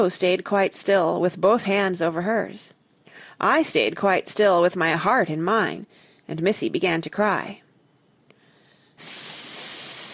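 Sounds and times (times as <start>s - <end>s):
speech: 0.0s - 7.6s, 9.0s - 9.6s
snake hissing: 9.0s - 10.1s.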